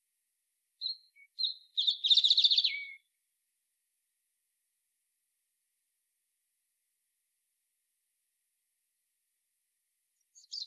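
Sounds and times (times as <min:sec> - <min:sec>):
European robin Erithacus rubecula calling: 0:00.8 - 0:03.1, 0:10.4 - 0:10.6.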